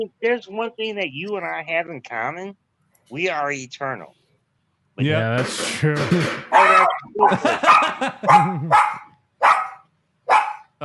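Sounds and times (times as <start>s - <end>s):
speech: 0.0s - 4.2s, 5.0s - 9.0s
laughter: 5.0s - 8.8s
dog barking and whining: 6.5s - 10.7s.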